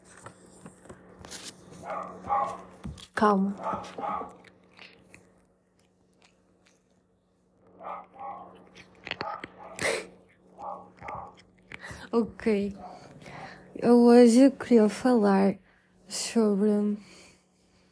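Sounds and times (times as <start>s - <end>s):
faint steady hum: 0.0s - 17.9s
cat chewing with crunchy wet bites: 1.7s - 13.4s
speech: 1.9s - 4.4s, 12.1s - 12.9s, 13.8s - 17.2s.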